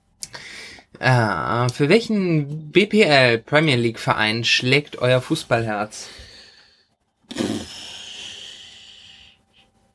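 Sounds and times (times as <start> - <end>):
speech: 1.0 - 6.2
heavy snorting exhale through nose: 7.3 - 9.0.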